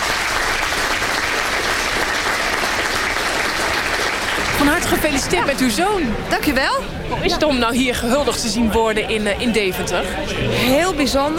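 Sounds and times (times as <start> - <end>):
audience applauding a speed skater honoured at his old skating club in Deventer: 0.0 - 5.8
speech: 4.7 - 11.3.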